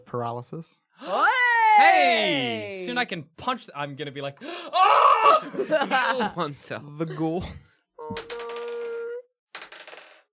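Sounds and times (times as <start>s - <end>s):
speech: 0.1s - 8.4s
laughter: 5.2s - 6.5s
dice rattling across a hard table: 8.2s - 8.8s, 9.5s - 10.3s.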